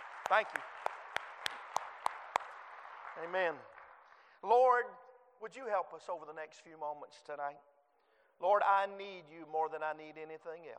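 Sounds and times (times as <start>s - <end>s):
hand claps of appreciation by a church audience at an evening service: 0.0s - 4.4s
speech: 0.3s - 0.8s, 3.2s - 3.7s, 4.4s - 7.7s, 8.4s - 10.7s.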